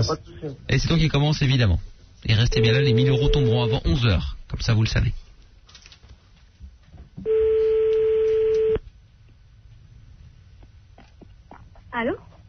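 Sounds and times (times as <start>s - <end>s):
speech: 0.0s - 5.2s, 11.9s - 12.3s
telephone tone as a call is being placed: 2.6s - 3.8s, 7.2s - 8.8s.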